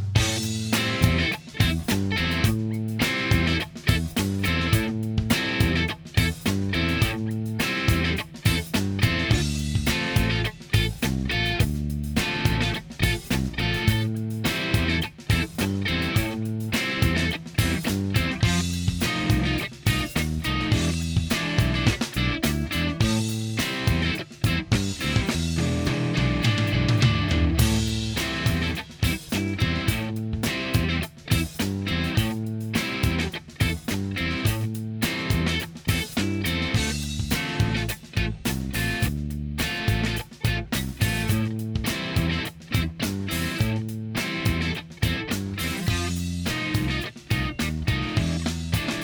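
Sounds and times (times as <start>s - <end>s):
keyboard: 0.2s - 49.0s.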